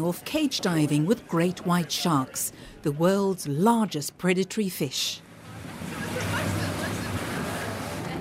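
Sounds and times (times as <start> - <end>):
speech: 0.0 - 6.0
faint murmur of voices: 0.0 - 8.1
waves and sloshing water at a harbour jetty: 5.2 - 8.1.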